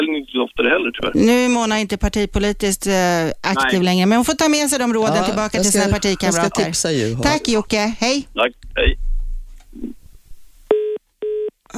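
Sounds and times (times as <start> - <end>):
speech: 0.0 - 9.0
telephone line tones while connecting a call: 10.7 - 11.5.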